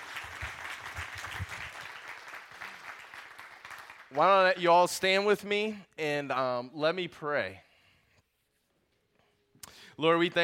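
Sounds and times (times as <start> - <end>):
audience applause: 0.0 - 4.2
speech: 4.1 - 7.7, 10.0 - 10.4.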